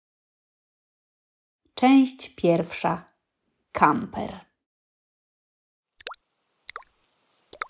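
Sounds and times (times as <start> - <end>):
speech: 1.8 - 3.1, 3.7 - 4.5
raindrops dripping with a crisp watery plop: 5.9 - 7.6.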